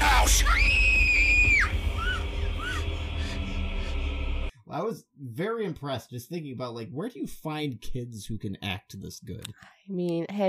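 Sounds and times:
girl screaming in a horror movie clip: 0:00.0 - 0:03.6
girl's strained cries: 0:00.0 - 0:04.5
speech: 0:04.8 - 0:10.4.

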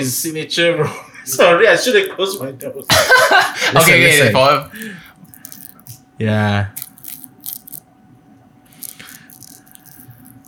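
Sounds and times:
speech: 0:00.0 - 0:05.1, 0:06.2 - 0:06.8
biting into crunchy fried chicken: 0:02.0 - 0:03.0, 0:04.1 - 0:06.0, 0:06.7 - 0:07.8, 0:08.7 - 0:10.4
laughter: 0:02.9 - 0:03.8.

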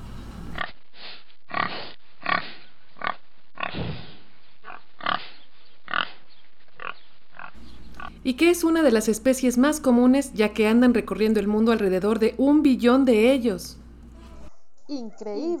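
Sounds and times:
pig grunting and oinking: 0:01.5 - 0:06.2
speech: 0:08.2 - 0:13.8, 0:14.9 - 0:15.5.

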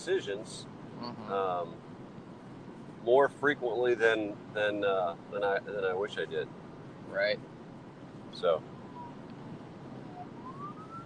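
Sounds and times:
speech: 0:00.0 - 0:01.9, 0:03.0 - 0:07.5, 0:08.3 - 0:08.7
street noise: 0:00.0 - 0:11.0
ambulance siren wailing: 0:08.7 - 0:09.2, 0:10.0 - 0:11.0.

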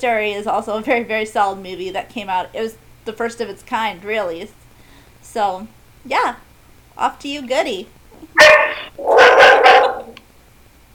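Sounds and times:
speech: 0:00.0 - 0:04.6, 0:05.2 - 0:09.1
dog barking: 0:08.3 - 0:10.2.

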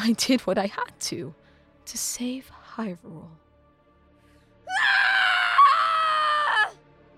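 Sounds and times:
speech: 0:00.0 - 0:03.4
young man screaming in rage: 0:04.7 - 0:06.8.

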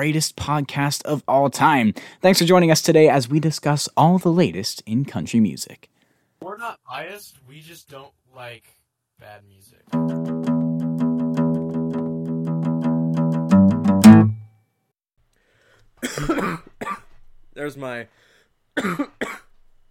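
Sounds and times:
speech: 0:00.0 - 0:06.0, 0:06.6 - 0:10.6, 0:16.1 - 0:16.7, 0:17.6 - 0:19.4
short tonal musical intro: 0:09.9 - 0:14.4
harsh coughs: 0:16.0 - 0:17.2, 0:18.8 - 0:19.5.

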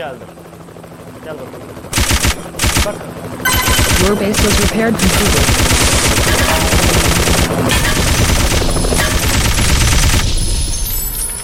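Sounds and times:
speech: 0:00.0 - 0:00.4, 0:01.2 - 0:09.0
video game machine gun fire: 0:02.0 - 0:08.6
busy video game soundscape: 0:02.0 - 0:10.2.

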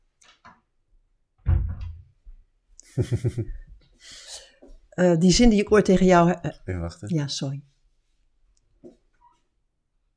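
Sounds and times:
door swinging with a low thump and rattle: 0:01.4 - 0:02.2
laughter: 0:02.9 - 0:03.6
speech: 0:03.0 - 0:04.2, 0:05.0 - 0:07.7.

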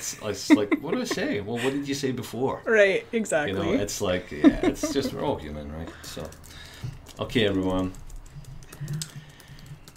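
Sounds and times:
laughter: 0:00.0 - 0:02.0, 0:04.2 - 0:06.0
speech: 0:00.0 - 0:08.0, 0:08.8 - 0:09.2
typing on a computer keyboard: 0:06.0 - 0:09.9.

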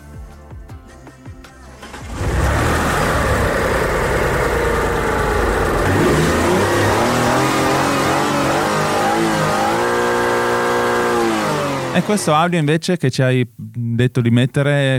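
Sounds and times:
car engine with holed rusted exhaust pipe revving: 0:01.8 - 0:12.4
speech: 0:12.0 - 0:14.9.

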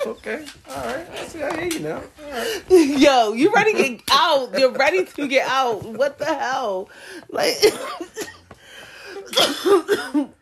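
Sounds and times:
speech: 0:00.0 - 0:08.3, 0:09.3 - 0:10.4
person with a sore throat coughing harshly: 0:09.1 - 0:10.4.

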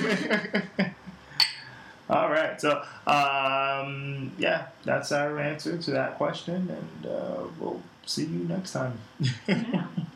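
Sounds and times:
laughter: 0:00.0 - 0:01.1, 0:09.2 - 0:10.1
speech: 0:00.1 - 0:00.8, 0:02.6 - 0:10.1
glasses clinking in a toast: 0:01.4 - 0:01.8.

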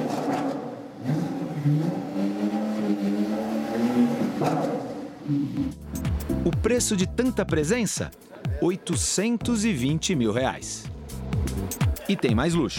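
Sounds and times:
loud sports car exhaust roar: 0:00.0 - 0:05.8
sports car engine revving: 0:00.0 - 0:06.4, 0:10.8 - 0:12.0
speech: 0:01.6 - 0:02.1, 0:06.6 - 0:10.9, 0:12.1 - 0:12.7.

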